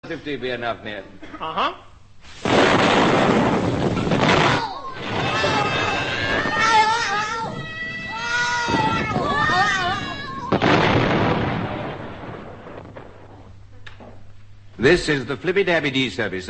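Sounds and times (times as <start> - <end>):
speech: 0.0 - 3.8, 14.8 - 16.4
loud explosive bang with rough rumble: 2.4 - 6.9, 8.6 - 13.6
warbling meow-like wails: 4.3 - 10.8.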